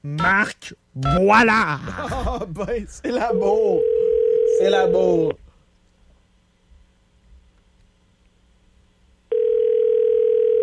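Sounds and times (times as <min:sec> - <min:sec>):
speech: 0:00.0 - 0:05.4
ringback tone of an outgoing telephone call: 0:03.8 - 0:05.0, 0:09.3 - 0:10.6.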